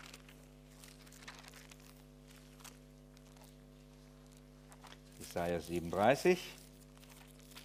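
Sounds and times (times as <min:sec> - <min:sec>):
Bible pages being leafed through: 0:00.0 - 0:07.6
steady low electrical hum: 0:00.0 - 0:07.6
speech: 0:05.3 - 0:06.6.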